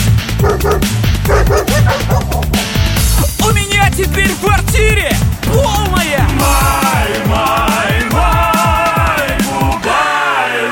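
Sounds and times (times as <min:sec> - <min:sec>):
dense driving musical backing: 0:00.0 - 0:10.6
dog barking in quick choppy bursts: 0:00.4 - 0:02.5.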